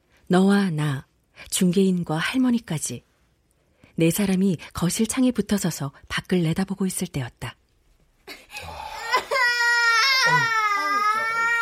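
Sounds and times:
speech: 0.3s - 3.1s, 4.0s - 7.6s
baby crying: 8.5s - 11.5s.

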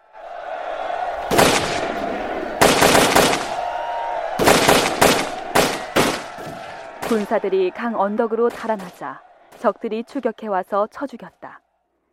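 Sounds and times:
matchlock musket gunfire volleys during a battle: 1.3s - 1.9s, 2.6s - 3.6s, 4.4s - 7.3s
speech: 7.1s - 11.6s.

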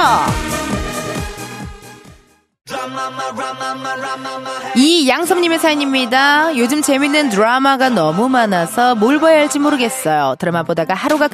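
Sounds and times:
requested pop song playing on radio: 0.0s - 10.4s
speech: 3.2s - 11.3s.

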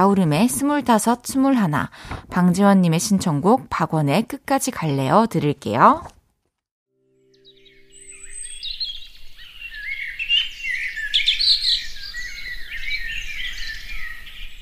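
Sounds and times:
speech: 0.0s - 6.2s
birds chirping in a forest: 7.3s - 14.6s.

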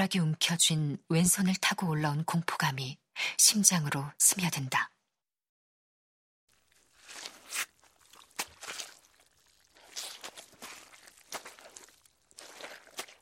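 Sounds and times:
speech: 0.0s - 4.9s
woman's footsteps squelching on wet waterlogged ground: 6.5s - 13.2s.

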